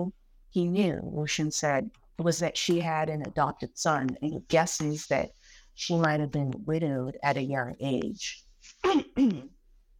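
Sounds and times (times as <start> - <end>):
speech: 0.0 - 9.5
person clearing throat: 8.8 - 9.6.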